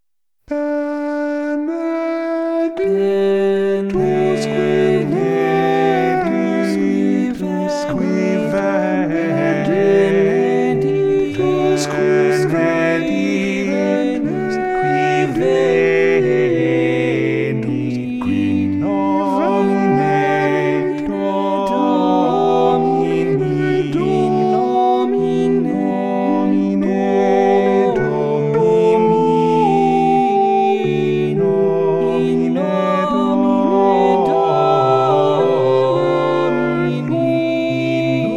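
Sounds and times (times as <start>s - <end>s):
equal voices singing: 0.5s - 38.3s.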